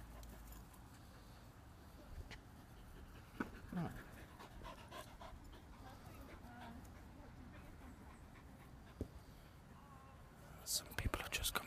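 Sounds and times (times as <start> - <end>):
outdoor noise in a park: 0.0 - 11.6
dog panting in a park after fetching a ball: 2.6 - 9.2
speech: 10.8 - 11.6.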